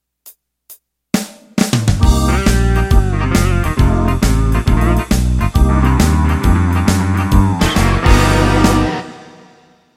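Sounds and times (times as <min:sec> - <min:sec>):
blues shuffle intro music: 0:00.1 - 0:09.5.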